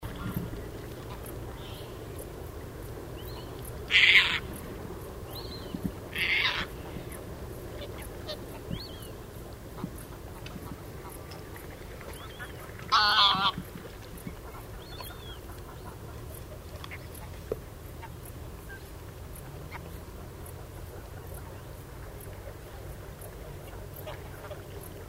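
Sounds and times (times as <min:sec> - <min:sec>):
Caspian tern calling at Ammersee: 0:00.0 - 0:20.4.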